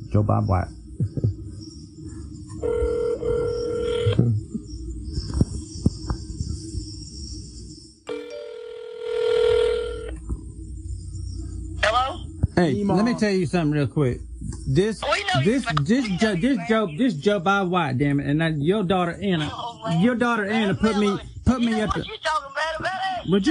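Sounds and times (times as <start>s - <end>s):
low hum: 0.0s - 23.4s
speech: 0.1s - 1.2s, 12.6s - 22.2s, 23.2s - 23.4s
phone ringback tone on an outgoing call: 2.6s - 4.2s, 8.1s - 10.2s.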